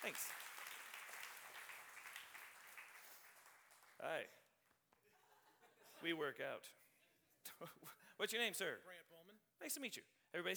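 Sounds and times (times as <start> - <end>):
speech: 0.0 - 0.5, 4.0 - 4.4, 6.0 - 6.8, 7.6 - 10.5
crowd applauding: 0.0 - 4.3
laughter: 5.1 - 6.1.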